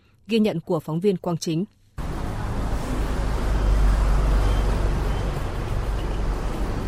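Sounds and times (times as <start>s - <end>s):
speech: 0.3s - 1.8s
dense road traffic of cars, motorbikes and rudimentary vehicles on a highway: 2.0s - 6.8s.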